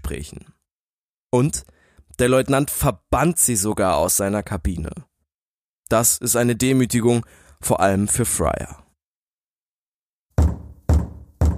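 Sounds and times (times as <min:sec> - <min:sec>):
speech: 0:00.1 - 0:00.6, 0:01.3 - 0:05.1, 0:05.9 - 0:08.8
knocking on a wooden cabin door: 0:10.4 - 0:11.5.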